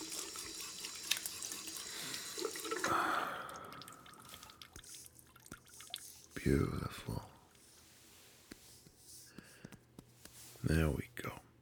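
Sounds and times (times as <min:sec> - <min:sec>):
slightly cold water running from a tap: 0:00.0 - 0:06.4
speech: 0:06.4 - 0:07.4, 0:10.7 - 0:11.3.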